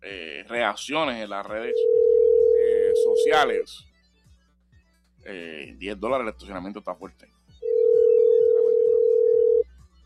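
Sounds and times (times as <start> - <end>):
speech: 0.0 - 2.1, 3.0 - 3.9, 5.2 - 7.4
ringback tone on an outgoing phone call: 1.7 - 3.3, 7.6 - 9.6.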